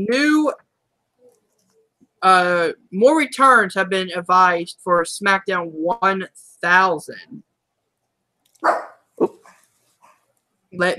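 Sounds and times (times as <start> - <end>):
speech: 0.0 - 0.6, 2.2 - 7.5, 8.6 - 9.4, 10.7 - 10.9
pet dog barking: 8.6 - 9.0.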